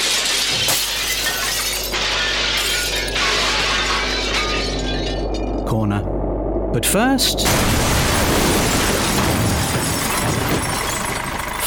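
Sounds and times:
tractor crashing through a studio wall: 0.0 - 5.6, 7.4 - 11.6
speech: 6.8 - 7.8.

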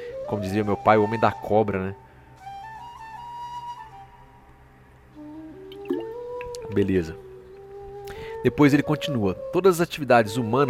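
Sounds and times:
speech: 0.3 - 2.0, 6.8 - 7.3, 8.4 - 10.6
person sipping and swallowing water: 5.7 - 6.7.

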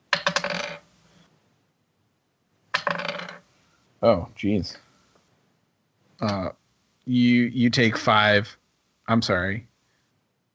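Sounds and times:
dice rolling on a hard table during a tabletop role-playing game: 0.1 - 0.9, 2.7 - 3.5
speech: 4.0 - 4.8, 6.2 - 9.7.

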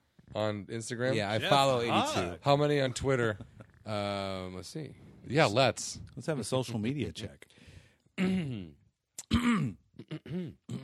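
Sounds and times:
speech: 0.4 - 7.6, 8.2 - 10.8
person clearing throat loudly: 8.2 - 10.8.

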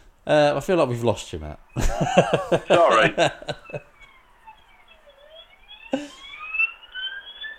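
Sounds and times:
speech: 0.2 - 3.9
laughter: 1.8 - 4.0, 5.9 - 6.2
police car siren wailing outside as it passes: 1.8 - 7.5.

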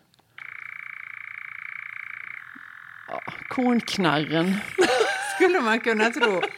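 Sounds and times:
European nightjar churring: 0.3 - 6.5
speech: 3.6 - 6.5
laughter: 4.4 - 6.5.

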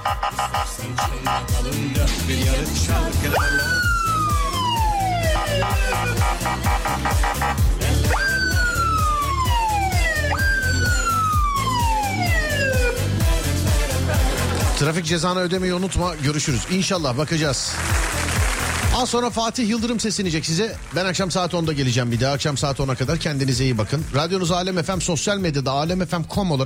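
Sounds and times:
wailing emergency siren: 0.0 - 1.4, 3.3 - 13.2
steady rhythmic background: 0.0 - 26.6
speech: 0.1 - 3.9, 5.4 - 7.6, 14.8 - 18.1, 19.0 - 26.6
laughter: 13.5 - 15.2.

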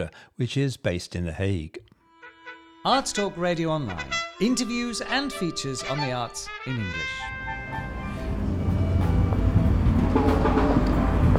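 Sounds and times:
speech: 0.0 - 1.8, 2.8 - 7.8
train rumbling at the railway station in Delft: 7.2 - 11.3.

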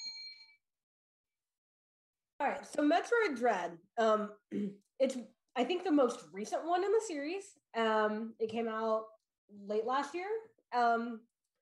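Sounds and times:
bright bell ringing: 0.0 - 0.5
speech: 2.4 - 11.3.

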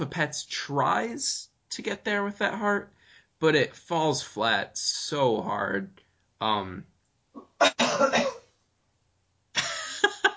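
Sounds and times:
speech: 0.0 - 6.9, 7.6 - 8.3
person coughing: 7.4 - 8.5.

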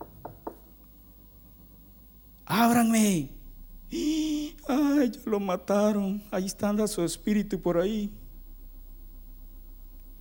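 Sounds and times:
knocking on a door: 0.0 - 0.6
low hum: 0.4 - 10.1
speech: 2.5 - 8.2.

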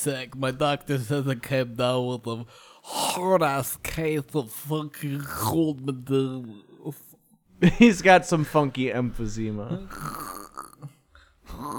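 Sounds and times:
speech: 0.0 - 10.7, 11.5 - 11.7
person making guttural snore-like snorts while awake: 9.7 - 11.7.

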